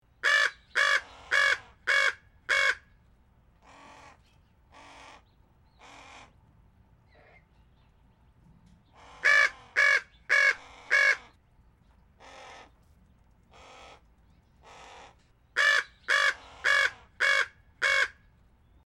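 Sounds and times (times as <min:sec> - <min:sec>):
Chihuahuan raven calling: 0:00.2 - 0:02.9, 0:03.6 - 0:06.4, 0:08.9 - 0:11.4, 0:12.2 - 0:12.8, 0:13.5 - 0:18.3.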